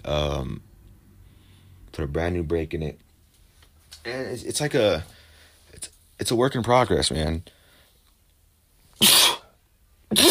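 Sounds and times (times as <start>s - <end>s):
speech: 0.0s - 0.7s, 2.0s - 3.0s, 3.9s - 7.6s, 9.0s - 9.2s
person sneezing: 9.0s - 9.5s, 10.1s - 10.2s.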